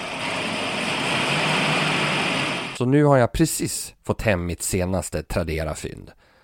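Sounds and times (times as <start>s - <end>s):
old car engine idling: 0.0s - 2.8s
speech: 2.8s - 6.2s.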